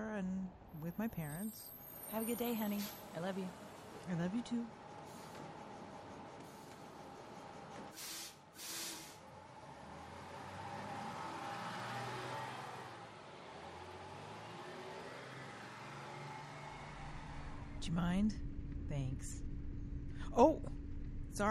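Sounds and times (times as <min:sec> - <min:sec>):
speech: 0:00.2 - 0:04.8, 0:17.9 - 0:19.5, 0:20.4 - 0:20.8
traffic noise: 0:00.4 - 0:18.9
bus air brakes hissing at a stop: 0:07.9 - 0:09.2
bus engine revving and rumbling as it pulls away: 0:08.0 - 0:17.9.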